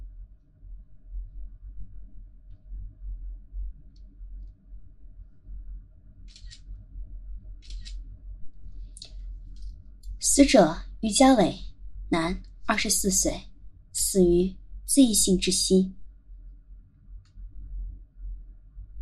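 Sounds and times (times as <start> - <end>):
steady low hum: 0.0 - 19.0
camera shutter clicks taking photos of a body during a forensic autopsy: 6.3 - 6.6, 7.6 - 8.0
speech: 10.4 - 16.0.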